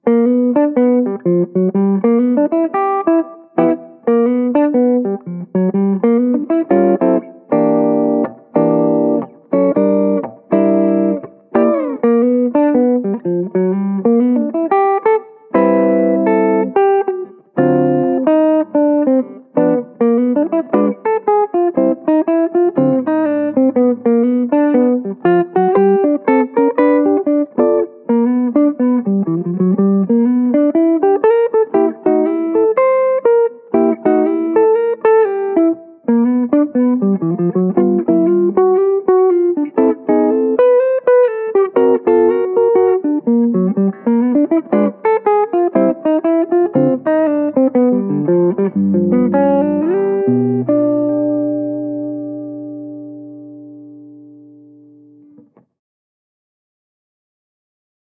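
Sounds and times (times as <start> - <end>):
jazz blues guitar comping with extended chords and melodic lines: 0.0 - 55.6.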